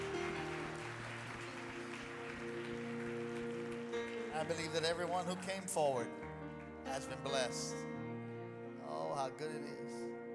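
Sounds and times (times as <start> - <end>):
audience applauding: 0.0 - 7.7
speech: 4.4 - 7.9, 9.2 - 10.2.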